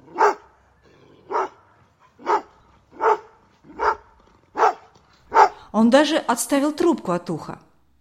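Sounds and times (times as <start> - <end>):
dog barking: 0.1 - 0.6, 1.3 - 5.7
speech: 5.7 - 7.6.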